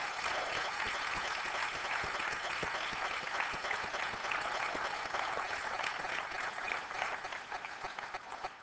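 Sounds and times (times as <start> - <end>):
large crowd applauding: 0.0 - 8.6.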